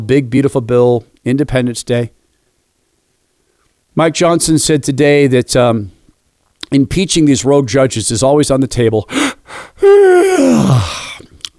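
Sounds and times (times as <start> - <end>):
speech: 0.0 - 2.2, 4.0 - 6.0, 6.7 - 11.0
exaggerated sarcastic human yawn: 9.2 - 11.3.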